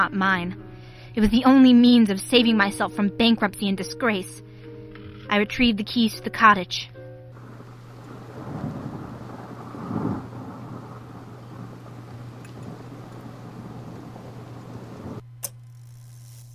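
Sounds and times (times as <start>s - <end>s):
speech: 0.0s - 4.4s, 5.3s - 7.0s
heavy rain pouring on trees: 7.4s - 15.2s
thunder rumbling: 7.4s - 15.2s
low steady hum: 7.4s - 15.6s.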